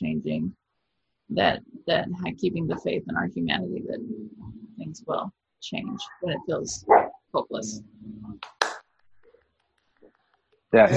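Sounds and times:
speech: 0.2s - 0.6s, 1.3s - 8.6s, 10.7s - 10.9s
single person clapping: 8.4s - 8.9s.

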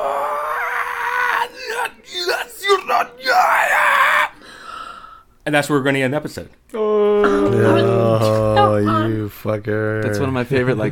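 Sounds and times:
eerie backwards-recorded scream: 0.0s - 4.4s
speech: 5.5s - 10.9s.

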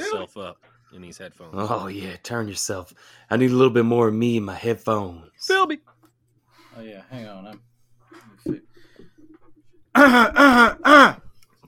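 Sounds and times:
speech: 0.1s - 5.9s, 6.8s - 8.7s, 10.0s - 11.2s
loud voiced throat-clearing grunts: 10.0s - 11.3s.

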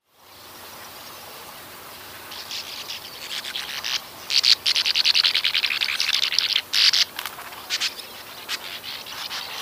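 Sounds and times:
Bank Swallow calls: 1.9s - 9.5s.

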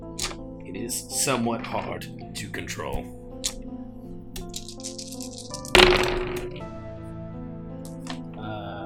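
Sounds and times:
soft steady music: 0.0s - 8.8s
speech: 0.7s - 3.2s, 5.8s - 6.5s
dice rolled for a dexterity check tumbling across a hard tabletop: 4.4s - 6.6s.

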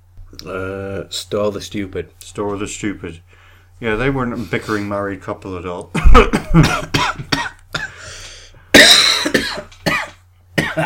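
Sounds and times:
speech: 0.4s - 7.4s
person coughing in rough uneven bursts: 6.0s - 8.0s, 8.7s - 10.8s.

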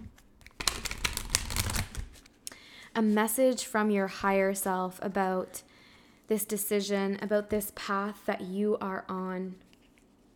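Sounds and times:
playing cards handled and drawn from a deck: 0.4s - 2.3s
speech: 3.0s - 5.7s, 6.3s - 9.7s.

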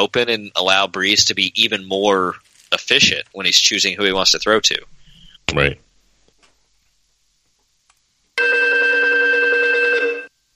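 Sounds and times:
speech: 0.0s - 5.9s
telephone ringing for an incoming call: 8.4s - 10.3s.

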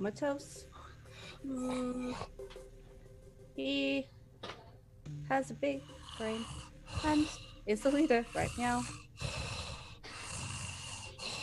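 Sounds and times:
speech: 0.0s - 2.6s, 3.6s - 9.4s
heavy raspy breathing of a sleeping pet: 0.6s - 2.5s, 5.7s - 11.4s.

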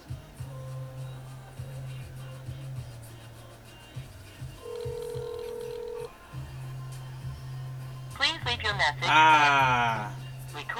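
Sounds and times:
telephone line buzzing tone: 4.6s - 6.1s
speech: 8.6s - 10.7s.

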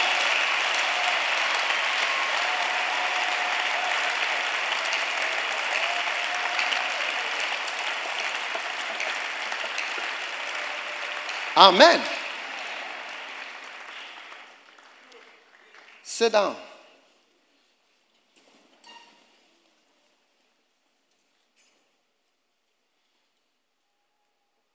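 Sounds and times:
large crowd applauding: 0.0s - 16.6s
speech: 11.6s - 12.2s, 16.2s - 16.7s.

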